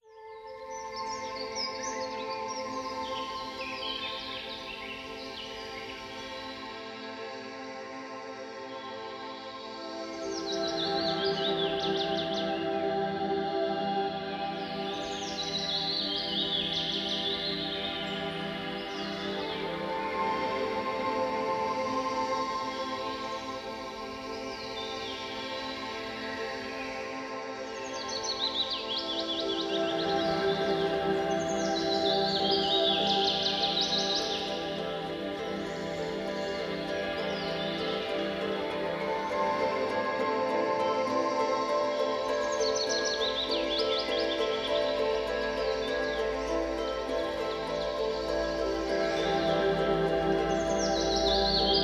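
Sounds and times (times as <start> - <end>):
relaxation music: 0.0 - 51.8.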